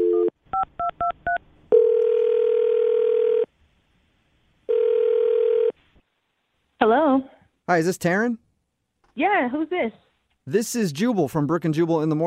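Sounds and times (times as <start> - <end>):
phone line tone: 0.0 - 3.5, 4.7 - 5.7
speech: 6.9 - 8.4, 9.2 - 12.2.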